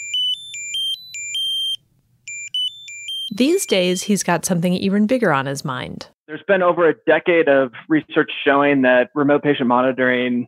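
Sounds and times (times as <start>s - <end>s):
smart pill bottle electronic reminder alarm beeping: 0.0s - 4.2s
speech: 3.3s - 10.4s.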